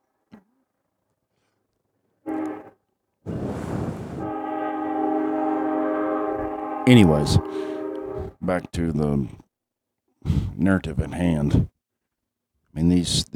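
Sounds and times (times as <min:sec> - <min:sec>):
train horn: 0:02.2 - 0:08.4
rumbling rush of rail noise: 0:03.3 - 0:08.5
speech: 0:06.9 - 0:07.8, 0:08.4 - 0:09.4, 0:10.2 - 0:11.7, 0:12.8 - 0:13.3.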